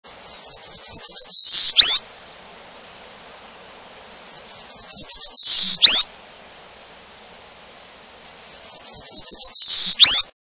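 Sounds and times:
golden-cheeked warbler singing: 0.1s - 2.1s, 4.0s - 6.1s, 8.2s - 10.3s.

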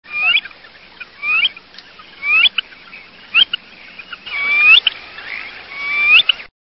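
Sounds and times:
Eared Grebe calling: 0.1s - 6.5s.

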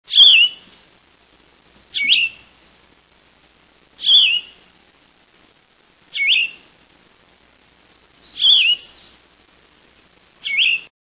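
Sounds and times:
Yellow-throated Vireo calling: 0.1s - 0.8s, 1.9s - 2.6s, 4.0s - 4.7s, 6.1s - 6.8s, 8.1s - 9.3s, 10.4s - 10.9s.

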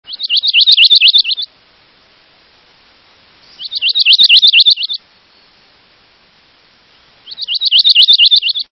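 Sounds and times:
Bay breasted Warbler: 0.1s - 1.5s, 3.5s - 5.0s, 7.2s - 8.7s.

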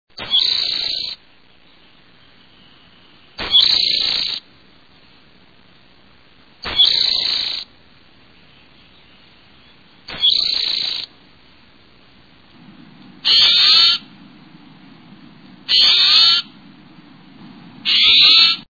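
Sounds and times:
Spotted Towhee calling: 0.2s - 1.2s, 1.9s - 4.4s, 6.6s - 7.7s, 8.4s - 11.1s, 12.6s - 18.7s.

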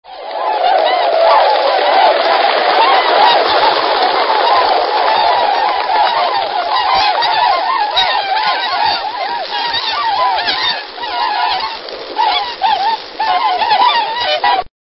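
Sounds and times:
tundra swan: 0.1s - 14.7s.

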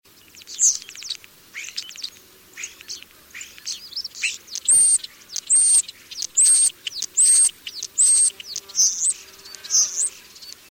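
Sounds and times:
European starling calling: 0.2s - 10.6s.

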